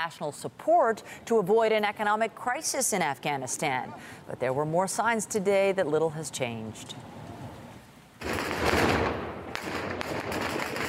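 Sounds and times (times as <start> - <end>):
speech: 0.0 - 7.2
burst of rapid gunfire: 8.2 - 10.8
gunshots fired into the air to break up a rally in Kabul: 8.2 - 10.8.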